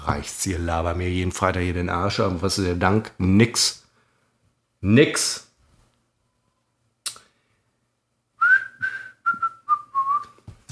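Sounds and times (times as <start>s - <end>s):
speech: 0.0s - 3.8s, 4.8s - 5.5s
41-year-old man attempting to whistle: 8.4s - 10.4s.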